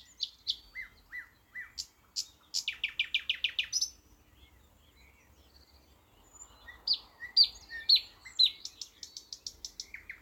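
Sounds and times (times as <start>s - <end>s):
thrush nightingale Luscinia luscinia song: 0.0s - 10.2s.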